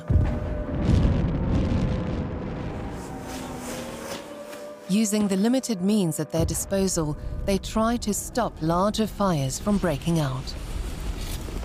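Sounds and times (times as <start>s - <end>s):
explosive and incendiary bombs landing on a city at night: 0.0s - 3.1s
speech: 4.9s - 10.7s.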